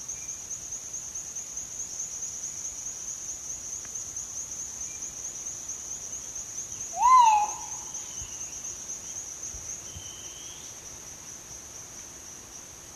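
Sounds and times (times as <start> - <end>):
shrill insect background: 0.0 - 12.9
crinkle-collared manucode whistled call: 7.0 - 7.9.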